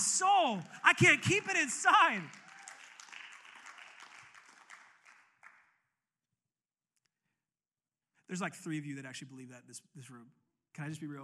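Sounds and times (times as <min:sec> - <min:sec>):
audience clapping in church: 0:00.0 - 0:05.8
speech: 0:00.4 - 0:02.4, 0:08.3 - 0:11.2.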